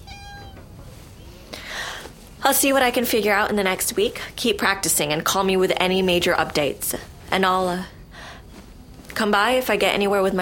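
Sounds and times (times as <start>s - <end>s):
male cat meowing on a person's lap: 0.0s - 0.7s
speech: 2.4s - 8.0s, 9.2s - 10.4s.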